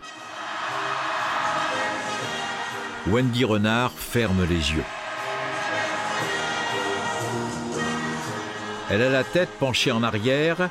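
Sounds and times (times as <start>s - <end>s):
stadium crowd of more than 40,000 people singing a national anthem: 0.0s - 3.1s, 4.9s - 9.6s
speech: 3.1s - 5.0s, 8.9s - 10.7s.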